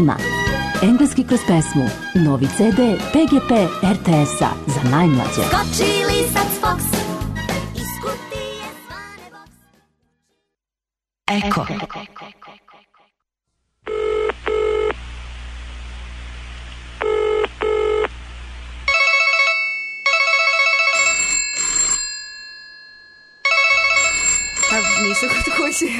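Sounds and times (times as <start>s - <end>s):
speech: 0.0s - 7.0s, 11.4s - 12.1s
telephone ringing loudly: 13.9s - 15.0s, 17.0s - 18.1s, 18.9s - 25.9s.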